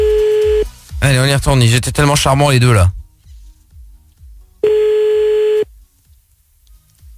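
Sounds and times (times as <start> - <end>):
telephone tone while calling someone back: 0.0 - 0.7, 4.6 - 5.7
speech: 1.0 - 3.0.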